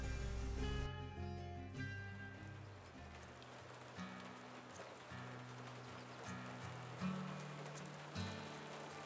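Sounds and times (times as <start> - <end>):
heavy rain pouring: 0.0 - 0.9, 2.4 - 9.0
low sustained musical drone: 0.0 - 1.2.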